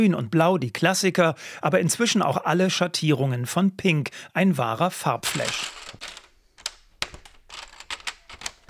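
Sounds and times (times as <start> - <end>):
speech: 0.0 - 5.8
small plastic Lego bricks clicked onto a baseplate: 5.2 - 8.6.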